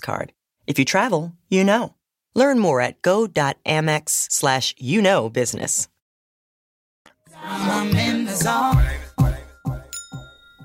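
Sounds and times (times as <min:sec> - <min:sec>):
speech: 0:00.0 - 0:05.9, 0:07.4 - 0:09.4
wind chimes sound effect: 0:08.5 - 0:10.6.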